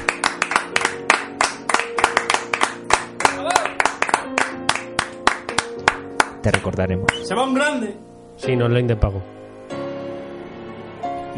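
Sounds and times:
applause: 0.0s - 7.2s
speech: 6.4s - 9.4s.

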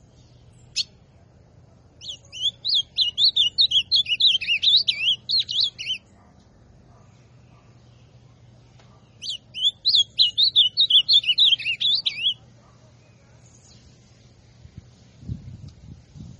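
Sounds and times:
ultramarine grosbeak singing classic song style: 0.0s - 1.2s, 2.0s - 6.3s, 6.9s - 14.4s.

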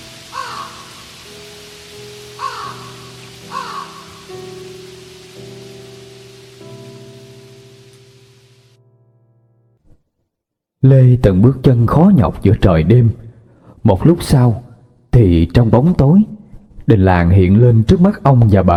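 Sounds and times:
crows cawing: 0.0s - 6.6s
steady rain at night: 0.0s - 8.8s
speech: 10.8s - 13.2s, 13.8s - 14.6s, 15.2s - 16.3s, 16.9s - 18.7s.

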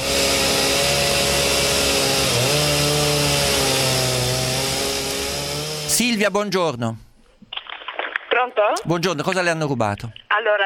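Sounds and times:
chainsaw running: 0.0s - 6.2s
speech: 6.0s - 7.0s, 8.4s - 10.6s.

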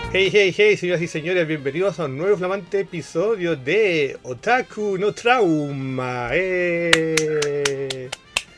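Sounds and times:
speech: 0.1s - 8.2s
slow handclaps: 6.9s - 8.5s.

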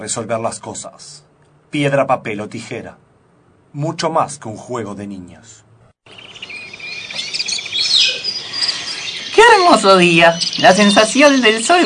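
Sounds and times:
speech: 0.0s - 3.0s, 3.7s - 6.2s, 9.4s - 11.8s
small birds chirping outdoors: 6.0s - 11.8s.

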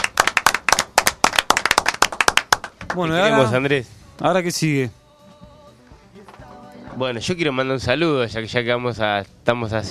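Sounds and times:
audience applause: 0.0s - 3.0s
speech: 3.0s - 5.0s, 7.0s - 9.9s.

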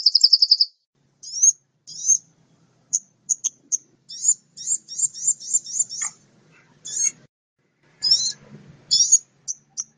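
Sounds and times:
mixed birds singing high, thin repeated notes: 0.0s - 2.3s, 2.9s - 6.2s, 6.8s - 7.3s, 8.0s - 9.9s.

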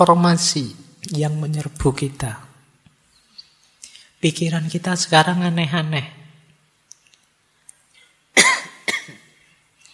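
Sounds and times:
speech: 0.0s - 2.4s, 4.2s - 6.2s
person coughing harshly: 8.4s - 9.3s.

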